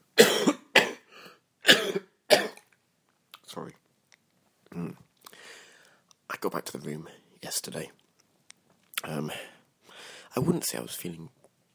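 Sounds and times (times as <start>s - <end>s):
person coughing harshly: 0.2s - 1.1s, 1.7s - 2.6s
wheezy intake of breath: 5.3s - 6.0s, 9.4s - 10.3s
speech: 6.4s - 8.0s, 9.0s - 9.5s, 10.4s - 11.4s.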